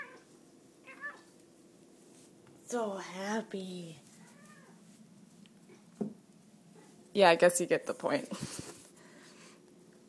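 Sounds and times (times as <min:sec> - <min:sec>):
cat meowing: 0:00.8 - 0:01.3, 0:04.3 - 0:04.8
speech: 0:02.7 - 0:04.0, 0:07.2 - 0:08.7.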